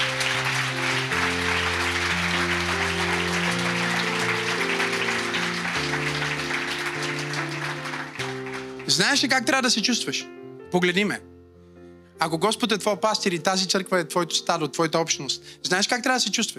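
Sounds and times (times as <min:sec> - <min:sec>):
sustained music chords: 0:00.0 - 0:08.9
church congregation applauding: 0:00.0 - 0:10.1
speech: 0:08.9 - 0:11.3, 0:12.2 - 0:16.5.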